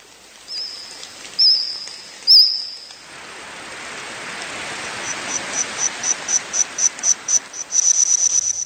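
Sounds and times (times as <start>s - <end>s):
rapid regular insect chirps and fast trill in a forest: 0.0s - 3.1s, 4.8s - 8.6s
insects buzzing high-pitched in a dense forest chorus: 0.0s - 8.6s.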